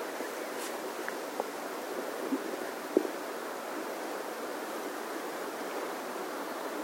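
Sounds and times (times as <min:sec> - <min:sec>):
flowing water: 0:00.0 - 0:06.8.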